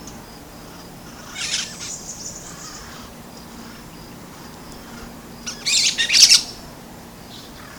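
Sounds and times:
brown-throated parakeet screeching squawks: 1.0 - 3.8, 4.8 - 6.6.

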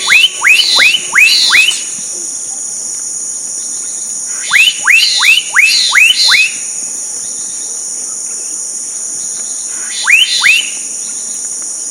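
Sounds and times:
black-capped donacobius rising whistled calls in Mongaguá, Brazil: 0.0 - 2.0, 4.4 - 6.6, 9.9 - 10.8
steady high insect drone in Mongaguá, Brazil: 0.0 - 11.8.

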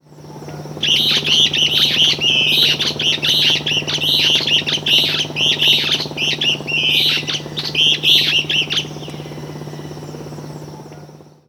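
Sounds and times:
Elaenia flavogaster calling: 0.6 - 11.2.

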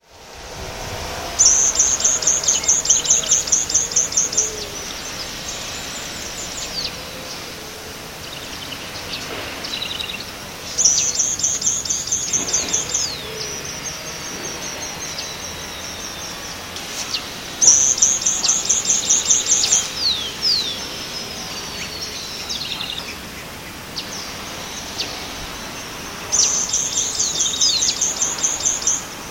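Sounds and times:
Leucochloris albicollis calling: 0.0 - 29.2.

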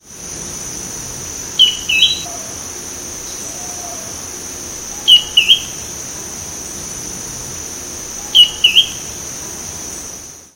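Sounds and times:
Drymophila ferruginea call: 1.6 - 2.6, 4.9 - 5.8, 8.2 - 9.1.

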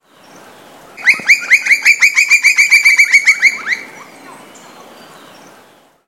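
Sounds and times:
Colaptes campestris calling: 1.0 - 4.9.

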